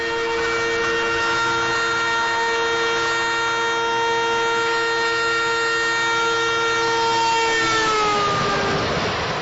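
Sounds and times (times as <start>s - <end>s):
train horn as it rushes past: 0.0s - 9.3s
train rumbling rail noise: 0.0s - 9.3s.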